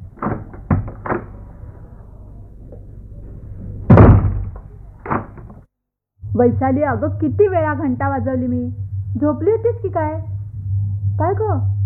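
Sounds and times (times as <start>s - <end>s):
door being opened with knocks and thuds: 0.0s - 1.5s, 3.8s - 5.6s
speech: 6.4s - 10.3s, 11.2s - 11.8s.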